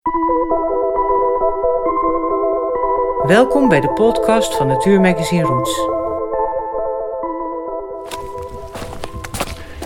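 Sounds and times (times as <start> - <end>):
sustained musical tone: 0.1 - 9.4
speech: 3.3 - 6.0
footsteps crunching through leaves on a forest floor: 8.0 - 9.8.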